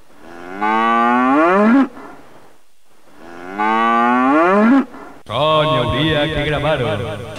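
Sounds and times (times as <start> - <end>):
cow mooing: 0.2 - 2.0, 3.2 - 4.9
speech: 6.3 - 7.2.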